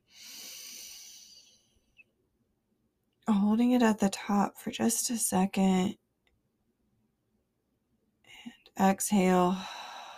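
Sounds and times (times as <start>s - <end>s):
deep inhale during guided breathing: 0.0s - 1.9s, 9.6s - 10.1s
speech: 3.5s - 6.0s, 8.8s - 9.8s.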